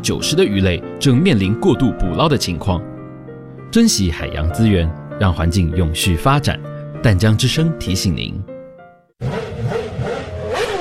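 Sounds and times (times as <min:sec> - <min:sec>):
speech: 0:00.0 - 0:02.9, 0:03.7 - 0:08.5
motorcycle engine revving as the throttle is opened: 0:09.2 - 0:10.8.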